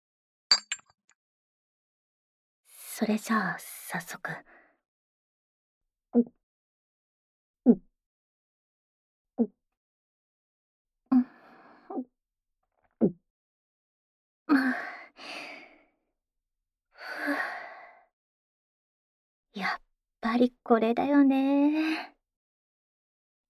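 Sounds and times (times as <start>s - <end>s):
glasses of alcohol clinking in a toast: 0.5s - 0.9s
speech: 3.0s - 4.6s, 6.1s - 6.4s, 7.7s - 7.9s, 14.5s - 15.5s, 19.6s - 22.1s.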